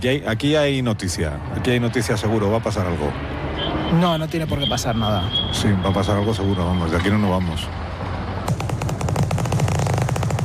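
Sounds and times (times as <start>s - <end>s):
speech: 0.0s - 7.9s
machine-gun-like gunfire as people shoot at each other: 8.5s - 10.4s.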